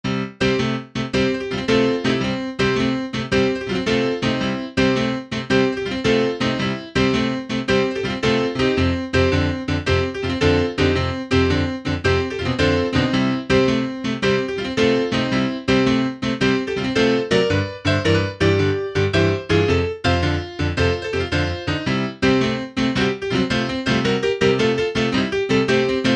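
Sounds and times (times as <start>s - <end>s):
dry piano: 0.0s - 26.1s.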